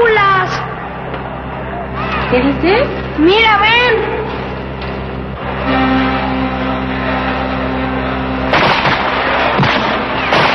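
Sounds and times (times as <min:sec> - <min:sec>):
low droning background: 0:00.0 - 0:10.5
speech: 0:02.3 - 0:04.2
gunfire: 0:08.5 - 0:10.5.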